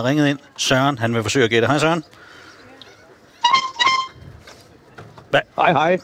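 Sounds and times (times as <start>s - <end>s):
speech: 0.0s - 2.3s, 5.3s - 6.0s
boat horn honking a tune: 3.4s - 4.3s.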